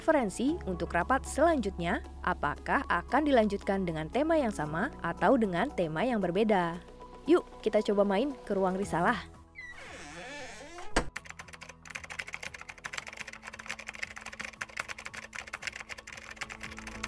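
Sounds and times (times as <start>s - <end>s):
speech: 0.0s - 9.4s
many people typing on computer keyboards: 11.0s - 17.0s.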